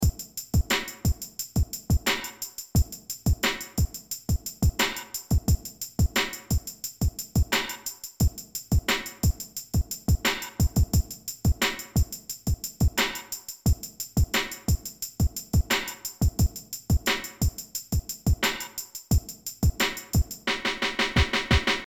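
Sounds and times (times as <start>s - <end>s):
drum beat at 88 bpm: 0.0s - 21.8s.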